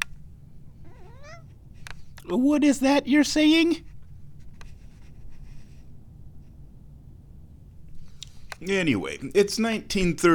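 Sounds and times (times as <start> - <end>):
agitated cat meowing outside a door: 0.7 - 1.6
speech: 2.3 - 3.9, 8.6 - 10.3.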